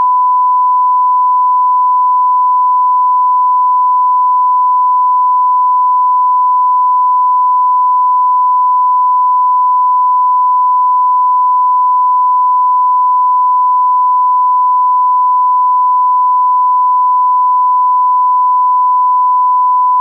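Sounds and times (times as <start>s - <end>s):
1000 Hz mono sine tone: 0.0s - 20.0s.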